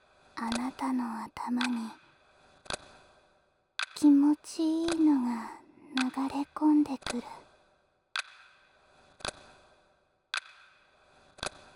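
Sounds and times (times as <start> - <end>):
clock ticking: 0.4 - 2.0, 3.8 - 7.4
speech: 0.4 - 2.0, 4.2 - 7.4
faint hushed background: 0.4 - 2.1, 3.9 - 7.5.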